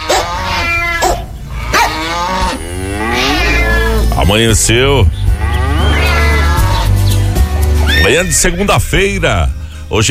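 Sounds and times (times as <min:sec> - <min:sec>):
cows mooing: 0:00.0 - 0:04.2, 0:05.1 - 0:07.0
speech: 0:04.3 - 0:05.2, 0:08.0 - 0:10.0.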